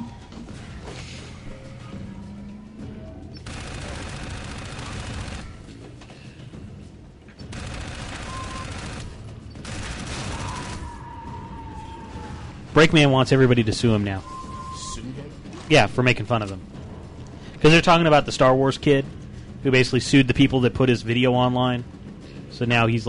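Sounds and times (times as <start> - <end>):
video game gunfire: 3.4 - 5.7, 7.5 - 11.0
speech: 12.8 - 14.3, 15.7 - 16.8, 17.6 - 23.0.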